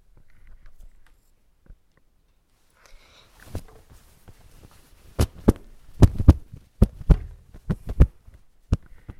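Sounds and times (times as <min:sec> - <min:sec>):
fast excited heartbeat of frightened youths: 0:05.2 - 0:09.1.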